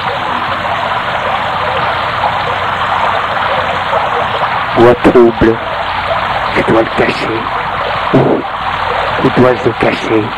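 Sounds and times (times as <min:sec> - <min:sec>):
steady dense rain pouring down: 0:00.0 - 0:10.3
speech: 0:04.8 - 0:05.8, 0:06.6 - 0:08.6, 0:09.2 - 0:10.3.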